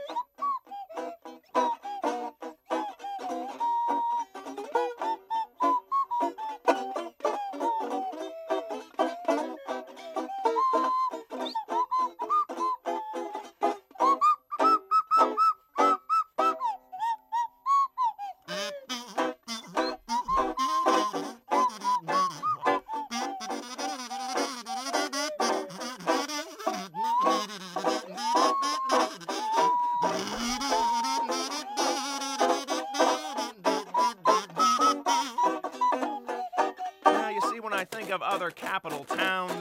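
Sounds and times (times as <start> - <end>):
slide whistle: 0.0 - 38.4
busy upbeat band with drums and other instruments: 19.2 - 39.6.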